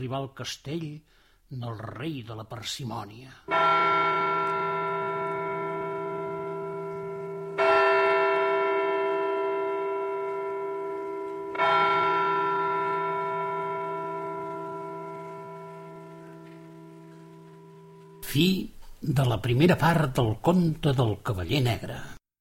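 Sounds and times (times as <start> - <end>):
speech: 0.0 - 4.1, 18.3 - 22.2
church bell tolling: 3.5 - 18.6.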